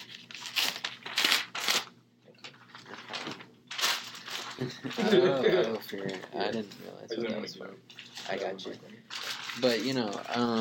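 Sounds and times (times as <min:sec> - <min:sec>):
blank sheet of paper being handled, rustling and crinkling: 0:00.0 - 0:05.0, 0:07.9 - 0:10.5
laughter: 0:04.6 - 0:05.9
speech: 0:04.6 - 0:10.5.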